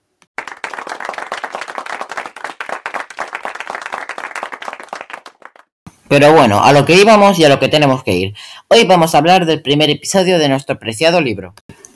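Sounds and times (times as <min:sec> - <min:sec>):
small crowd applauding: 0:00.4 - 0:05.7
speech: 0:06.1 - 0:11.6.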